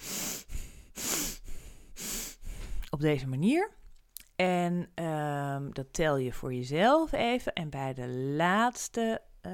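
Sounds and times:
deliberate rapid breathing exercise: 0:00.0 - 0:02.8
speech: 0:03.0 - 0:03.8, 0:04.4 - 0:09.5.

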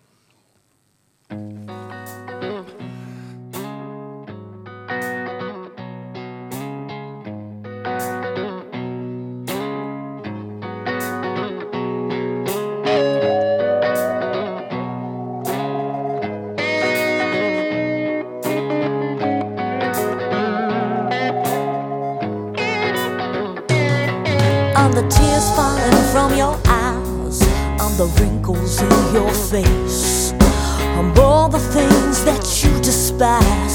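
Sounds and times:
distorted electric guitar lines ringing: 0:00.6 - 0:33.7
blues record by a band from the Detroit area playing: 0:10.6 - 0:30.4
speech: 0:28.0 - 0:30.1.

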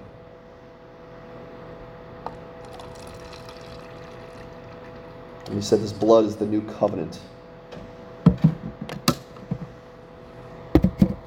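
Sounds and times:
low hum: 0:00.0 - 0:11.2
liquid pouring into a cup: 0:02.6 - 0:05.1
speech: 0:05.5 - 0:07.4.

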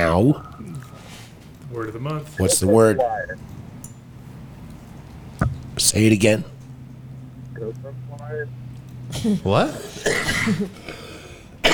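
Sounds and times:
speech: 0:00.0 - 0:00.6, 0:01.8 - 0:03.5, 0:05.8 - 0:06.5, 0:07.6 - 0:11.0
short raspy cough: 0:09.1 - 0:11.7.

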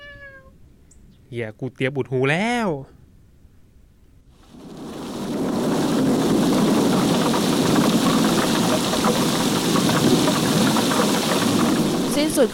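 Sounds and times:
speech: 0:01.3 - 0:03.0, 0:12.4 - 0:12.5
heavy rain pouring: 0:04.4 - 0:12.5.

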